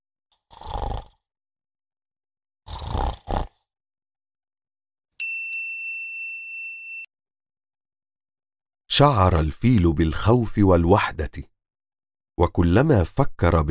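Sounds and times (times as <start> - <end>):
sleeping lion snoring with deep raspy snores: 0.4 - 1.3, 2.6 - 3.7
bright sustained bell-like ding: 5.2 - 7.1
speech: 8.9 - 11.5, 12.4 - 13.6.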